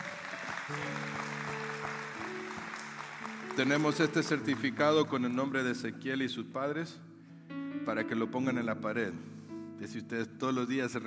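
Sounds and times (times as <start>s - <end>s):
crowd clapping: 0.0s - 5.6s
organ or keyboard chords: 0.0s - 8.8s
speech: 0.7s - 1.1s, 3.6s - 7.1s, 7.9s - 11.0s.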